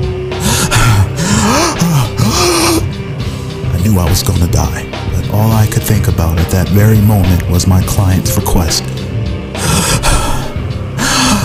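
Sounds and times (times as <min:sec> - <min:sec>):
person gasping for air with wheezing breaths: 0:00.4 - 0:02.9, 0:09.5 - 0:11.4
person groaning: 0:00.4 - 0:02.9, 0:09.6 - 0:11.4
speech: 0:03.9 - 0:09.0.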